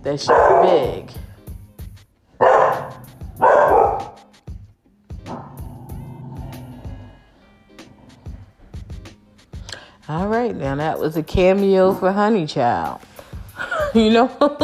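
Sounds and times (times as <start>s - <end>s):
speech: 0.0s - 1.3s, 10.5s - 13.1s, 14.0s - 14.6s
big strong female dog barking: 0.2s - 1.2s, 2.4s - 4.3s, 5.2s - 5.7s
big strong female dog growling or whining: 5.2s - 8.5s.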